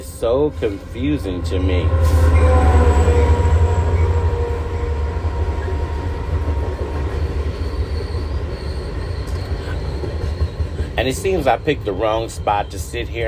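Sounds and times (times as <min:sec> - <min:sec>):
high metallic squeals of train wheels: 0:00.0 - 0:13.2
train rumbling past on rail tracks: 0:00.0 - 0:13.2
speech: 0:00.2 - 0:02.6, 0:11.0 - 0:13.2.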